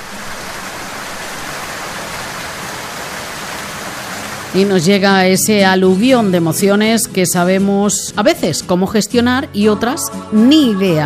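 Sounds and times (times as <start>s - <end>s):
steady rain pouring: 0.0s - 5.6s
speech: 4.5s - 11.0s.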